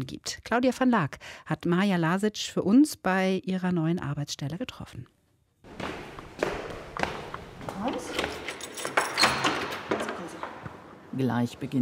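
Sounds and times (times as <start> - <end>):
speech: 0.0 - 5.2, 7.8 - 8.3, 11.1 - 11.7
sharp clicks and knocks of a door being unlocked and handled: 6.1 - 11.0
keys jingling and scraping in a door lock: 7.7 - 10.6.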